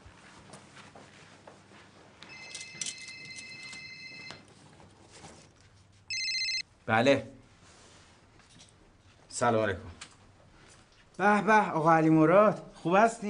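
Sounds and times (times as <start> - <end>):
telephone ringing with an electronic trill: 2.2 - 4.5, 6.1 - 6.7
speech: 6.9 - 7.4, 9.4 - 10.0, 11.2 - 13.2.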